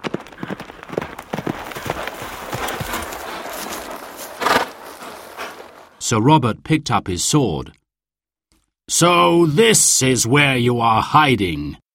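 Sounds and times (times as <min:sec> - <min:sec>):
horse galloping through a forest: 0:00.0 - 0:06.0
steady wash of rustling: 0:00.2 - 0:06.0
speech: 0:06.1 - 0:07.8, 0:08.9 - 0:11.8.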